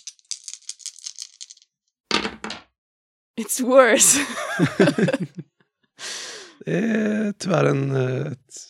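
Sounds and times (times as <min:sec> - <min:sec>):
dice rattling in a hand or cup: 0:00.0 - 0:01.7
dice clattering onto a table: 0:00.0 - 0:02.7
speech: 0:03.4 - 0:05.5, 0:06.6 - 0:08.6
laughter: 0:04.0 - 0:05.4.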